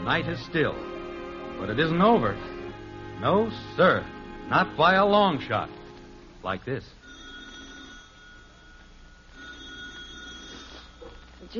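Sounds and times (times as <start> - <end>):
faint hiss: 0.0 - 11.5
speech: 0.1 - 1.0, 1.6 - 2.6, 3.2 - 5.8, 6.4 - 7.0
telephone bell ringing: 7.0 - 11.5.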